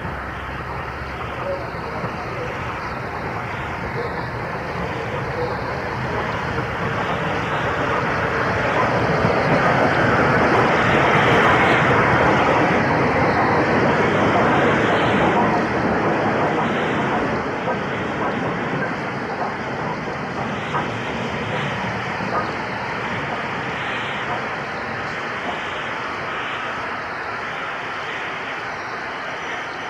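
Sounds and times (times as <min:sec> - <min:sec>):
rolling clatter of passenger train carriages: 0:00.0 - 0:23.6
V2 steam locomotive arriving with passenger train: 0:00.0 - 0:29.8.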